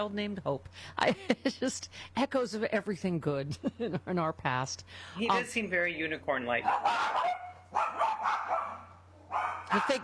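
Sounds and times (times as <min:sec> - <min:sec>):
speech: 0:00.0 - 0:08.4, 0:09.7 - 0:10.0
dogs barking: 0:06.6 - 0:10.0.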